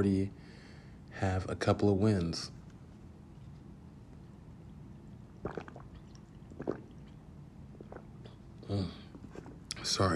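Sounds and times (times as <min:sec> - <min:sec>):
speech: 0:00.0 - 0:00.4, 0:01.2 - 0:02.6, 0:08.7 - 0:09.0, 0:09.8 - 0:10.1
person gulping down a drink of water: 0:04.7 - 0:09.8.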